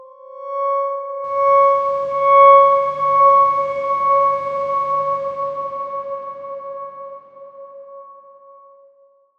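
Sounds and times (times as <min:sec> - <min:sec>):
dark swarm synth tone: 0:01.3 - 0:07.4.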